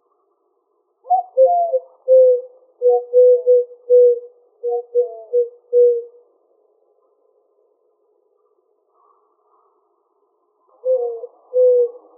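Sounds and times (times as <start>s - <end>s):
Eurasian collared dove cooing in Arizona, United States: 1.1s - 6.2s, 10.8s - 12.1s.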